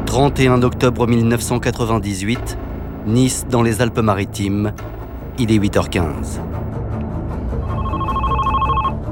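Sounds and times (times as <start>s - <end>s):
speech: 0.1s - 6.7s
telephone ringing at the central police station in Nice: 7.6s - 9.0s.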